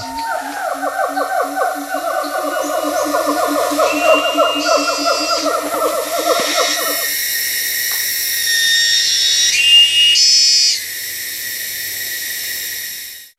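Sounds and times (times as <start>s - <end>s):
bird chatter in jungle: 0.0s - 7.1s
rapid rising monkey whoops in jungle at the edge of a reserve: 0.0s - 7.1s
high-pitched insect chatter in jungle: 0.0s - 13.3s.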